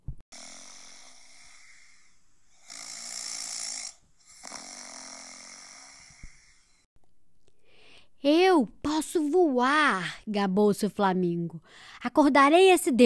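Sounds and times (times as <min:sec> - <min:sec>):
loud drawn-out snoring with rasping rattling breaths: 0:00.3 - 0:06.9
speech: 0:08.2 - 0:13.0.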